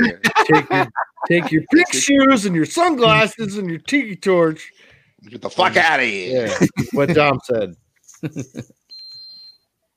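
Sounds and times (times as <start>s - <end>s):
laughter: 0.0s - 2.3s, 6.4s - 7.4s, 8.2s - 8.7s
speech: 0.1s - 8.8s
fire alarm beeping: 8.9s - 9.6s.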